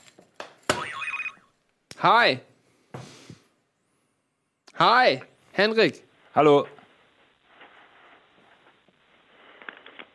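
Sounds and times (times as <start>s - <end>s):
short electronic ringtone for an incoming call: 0.8s - 1.5s
speech: 2.0s - 2.5s, 4.8s - 6.8s.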